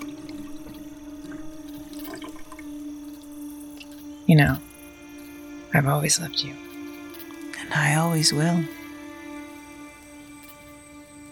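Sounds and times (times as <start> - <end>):
constant low hum: 0.0 - 11.3
running water for rinsing: 0.0 - 11.3
speech: 4.3 - 4.7, 5.7 - 6.7, 7.7 - 8.8.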